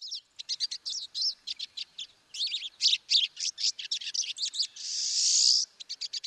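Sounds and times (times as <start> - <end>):
flock of pine siskins chattering while feeding: 0.0 - 6.2.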